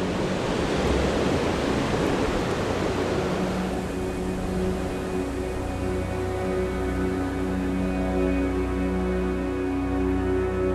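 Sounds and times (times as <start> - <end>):
roar of ocean surf at a beach: 0.0 - 5.8
steady sustained humming tones: 0.0 - 10.7.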